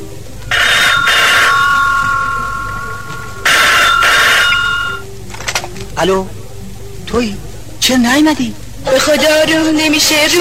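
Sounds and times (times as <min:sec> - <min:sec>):
low hum: 0:00.0 - 0:05.2
telephone ringing: 0:00.5 - 0:05.0
speech: 0:06.0 - 0:06.4, 0:07.1 - 0:10.4.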